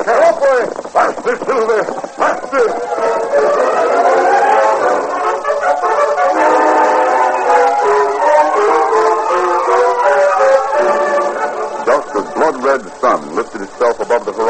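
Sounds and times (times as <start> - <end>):
speech: 0.0 - 3.0
steam express train arriving at the station: 0.0 - 14.4
steam express train whistle: 2.8 - 12.0.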